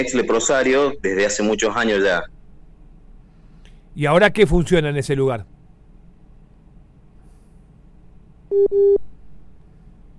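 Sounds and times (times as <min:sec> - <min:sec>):
speech: 0:00.0 - 0:02.4, 0:04.0 - 0:05.5, 0:08.5 - 0:09.0
faint noise: 0:00.0 - 0:10.1
telephone busy tone after a dropped WhatsApp call: 0:08.5 - 0:09.0.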